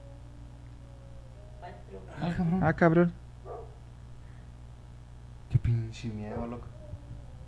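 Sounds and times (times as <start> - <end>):
steady low hum: 0.0 - 7.4
speech: 1.9 - 3.2, 5.7 - 6.8
bark from a running dog: 3.4 - 3.8.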